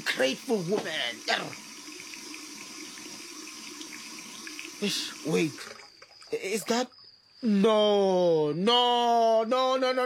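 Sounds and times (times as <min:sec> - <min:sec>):
tap water running into a sink: 0:00.0 - 0:06.8
speech: 0:00.1 - 0:01.7, 0:04.8 - 0:10.0.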